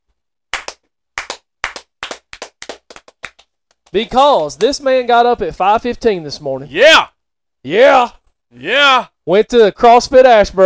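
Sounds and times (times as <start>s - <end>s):
slow hand clapping: 0.5s - 5.1s
speech: 3.9s - 10.6s.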